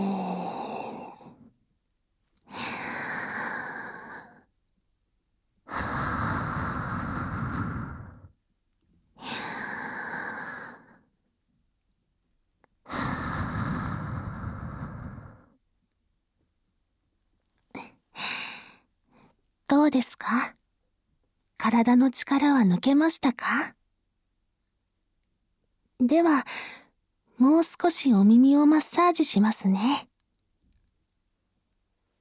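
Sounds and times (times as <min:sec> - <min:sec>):
slow deliberate breathing in and out during an aromatherapy relaxation session: 0:00.0 - 0:01.6, 0:02.4 - 0:04.5, 0:05.7 - 0:08.4, 0:09.1 - 0:11.2, 0:12.8 - 0:15.6
speech: 0:19.9 - 0:20.6, 0:21.6 - 0:23.8, 0:26.0 - 0:26.8, 0:27.4 - 0:30.1.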